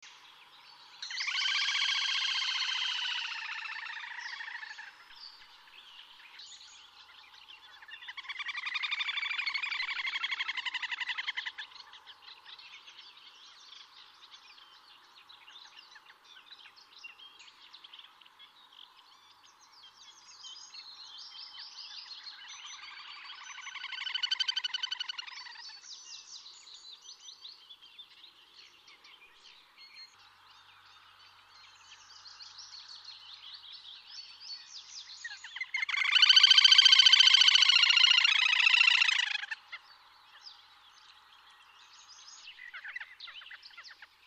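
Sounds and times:
little grebe calling: 0:01.0 - 0:05.1, 0:07.7 - 0:12.1, 0:22.3 - 0:25.9, 0:35.2 - 0:39.8.

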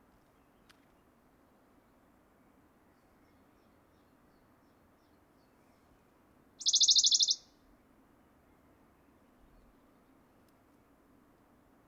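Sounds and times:
Western Bonelli's warbler short rapid trill: 0:06.6 - 0:07.4.

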